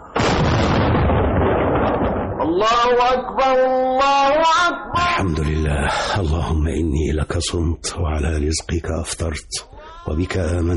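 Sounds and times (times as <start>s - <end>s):
iftar cannon firing to mark the end of the fast: 0.1s - 2.6s
speech: 2.5s - 10.7s.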